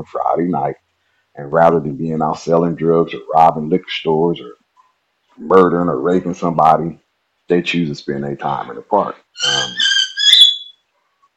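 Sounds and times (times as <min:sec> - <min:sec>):
speech: 0:00.0 - 0:04.6, 0:05.4 - 0:09.8
shrill whistling bird call: 0:09.4 - 0:10.8.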